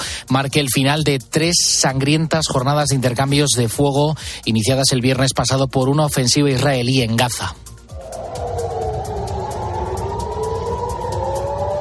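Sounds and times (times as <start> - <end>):
speech: 0.3 - 7.7
air raid siren wailing: 7.8 - 11.7
low rumbling background: 7.8 - 11.7.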